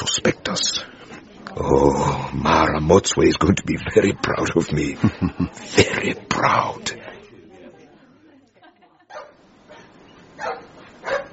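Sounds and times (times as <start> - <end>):
speech: 1.6 - 7.0
laughter: 4.2 - 9.3
badly behaved dog barking in short yapping bursts: 10.4 - 11.3.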